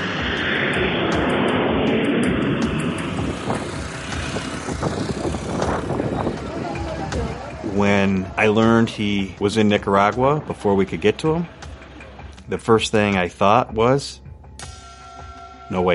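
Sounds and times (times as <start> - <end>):
airplane flying overhead with broad rushing engine drone: 0.0 - 15.9
voices: 5.5 - 11.6
speech: 8.4 - 11.6, 12.5 - 14.2, 15.7 - 15.9.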